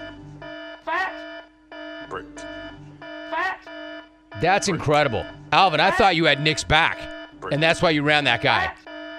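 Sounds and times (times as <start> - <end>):
break alarm buzzing: 0.0 - 9.1
speech: 4.4 - 8.8.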